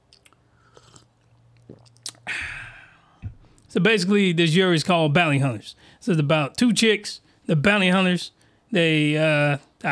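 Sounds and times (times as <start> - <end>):
low steady hum: 0.0 - 9.9
person drinking a glass of water: 0.1 - 3.7
speech: 3.7 - 9.9.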